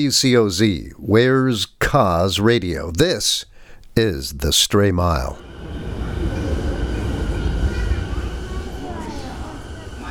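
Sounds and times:
speech: 0.0s - 5.8s
subway train in Tokyo rumbling on rails: 5.4s - 10.0s.

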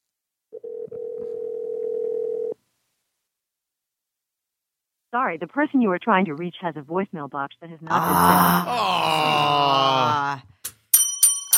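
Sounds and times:
telephone dial tone while placing a call: 0.6s - 2.6s
speech: 5.2s - 10.5s.

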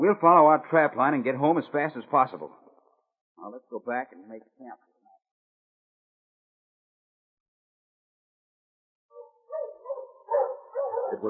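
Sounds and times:
speech: 0.0s - 2.6s, 3.4s - 4.9s
sled dogs barking and yelping: 9.1s - 11.2s.

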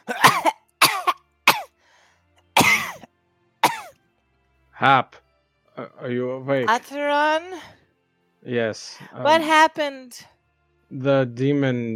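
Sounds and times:
person coughing: 0.0s - 1.7s, 2.6s - 3.9s
speech: 4.8s - 5.2s, 6.0s - 7.8s, 8.4s - 10.3s, 10.9s - 11.9s.

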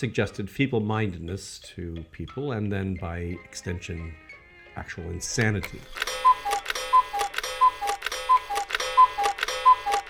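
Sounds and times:
speech: 0.0s - 4.2s, 4.8s - 6.4s
cuckoo clock ticking: 5.4s - 10.0s.

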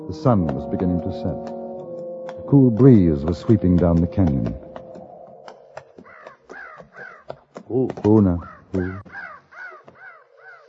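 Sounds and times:
speech: 0.0s - 1.6s, 2.4s - 4.6s, 7.7s - 9.2s
flock of crows cawing: 5.0s - 10.6s.

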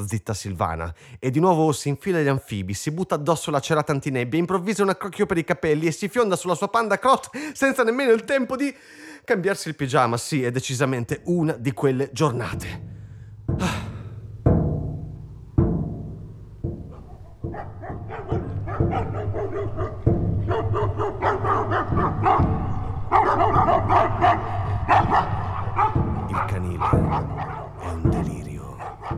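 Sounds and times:
speech: 0.0s - 13.8s
several dogs barking and yapping at a kennel: 13.4s - 29.1s.

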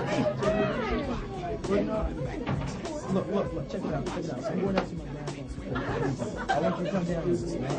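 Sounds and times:
brief laughs rising out of crowd babble: 0.0s - 2.0s, 5.5s - 7.7s
steady murmur of many overlapping voices: 0.0s - 7.7s.

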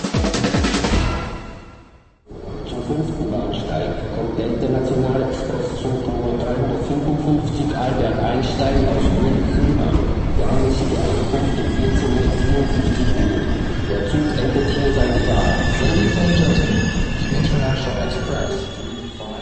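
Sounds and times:
train from Munich rolling into Prague main station with low rumble: 0.1s - 19.4s
hum of busy Prague main station: 2.3s - 19.4s
indistinct voices murmuring: 2.3s - 19.4s
faint high train wheel squeals: 8.5s - 19.4s.

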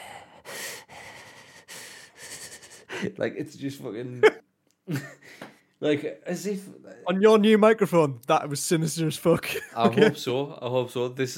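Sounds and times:
voice imitating heavy breathing on a phone line: 0.0s - 3.2s
speech: 3.0s - 5.2s, 5.8s - 11.3s.

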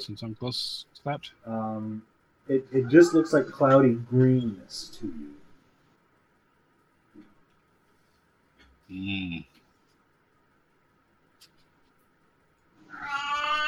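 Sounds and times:
speech: 0.0s - 5.4s, 8.9s - 9.5s
faint hum: 0.0s - 13.6s
cat meowing: 12.9s - 13.6s.

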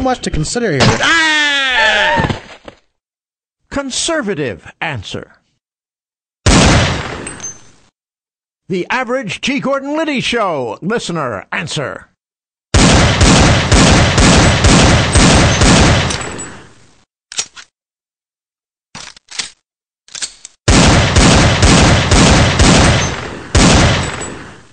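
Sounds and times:
speech: 0.0s - 1.5s, 3.7s - 5.4s, 8.7s - 12.1s
gunshots from target shooting with hollow-point ammunition: 6.5s - 7.3s, 12.7s - 16.3s, 20.7s - 24.7s.

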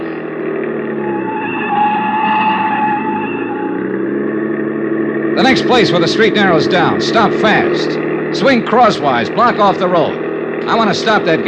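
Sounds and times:
car engine roaring while taking fast corners: 0.0s - 11.4s
tires squealing on fast corners through streets: 0.0s - 11.4s
speech: 5.4s - 11.4s.

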